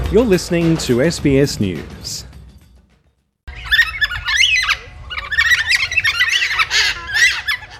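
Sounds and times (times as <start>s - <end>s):
speech: 0.1s - 2.3s
Carnaby's black cockatoos squawking in southwest Western Australia: 3.5s - 7.7s.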